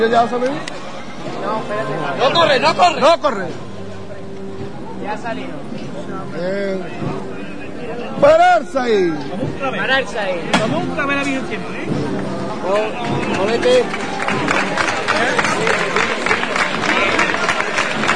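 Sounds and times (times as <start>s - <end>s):
speech: 0.0s - 3.7s, 5.1s - 7.2s, 7.9s - 14.5s
overlapping voices: 11.8s - 18.1s
crowd applauding outdoors in the Plaza del Clavo on Palm Sunday night: 12.1s - 18.1s.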